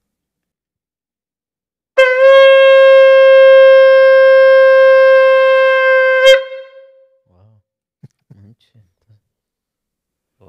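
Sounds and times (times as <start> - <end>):
shofar tekiah blast during worship: 2.0 - 7.2.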